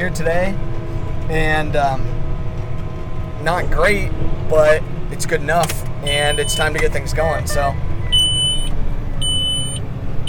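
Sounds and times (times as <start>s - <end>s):
speech: 0.0s - 2.2s, 3.4s - 7.9s
low steady tractor engine rumble: 0.0s - 10.2s
tractor auto-steer system beeping while planting in a hilly field: 6.0s - 6.8s, 7.5s - 10.2s.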